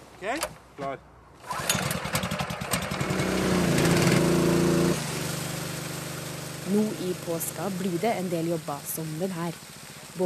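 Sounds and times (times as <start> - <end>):
speech: 0.2 - 1.7, 6.7 - 10.2
petrol-engine water pump of a rescue boat crew running: 1.4 - 10.2.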